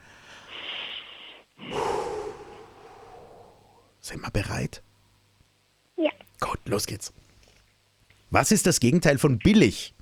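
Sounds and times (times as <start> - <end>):
long deep inhale and breathy exhale: 0.0 - 3.9
speech: 4.1 - 4.9, 6.7 - 7.3, 8.3 - 10.0.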